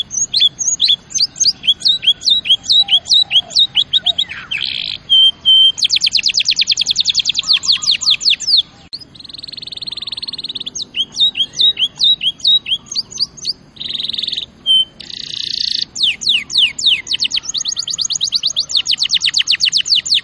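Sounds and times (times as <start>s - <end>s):
champion canary singing: 0.0s - 20.2s.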